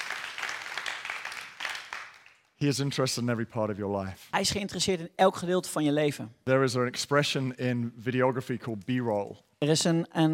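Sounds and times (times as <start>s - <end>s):
crowd applauding: 0.0s - 2.6s
speech: 2.6s - 10.3s.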